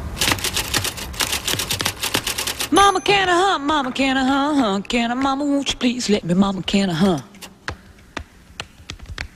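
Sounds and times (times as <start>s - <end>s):
old typewriter keys played as musical percussion: 0.2s - 3.2s
speech: 2.9s - 7.3s.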